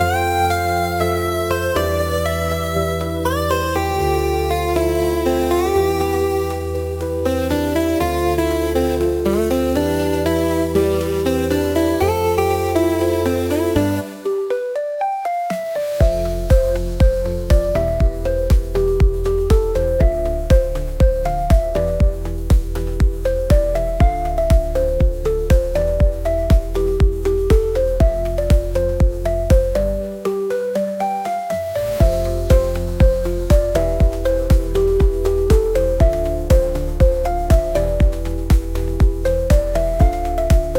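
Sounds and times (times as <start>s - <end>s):
chiptune music: 0.0s - 40.7s.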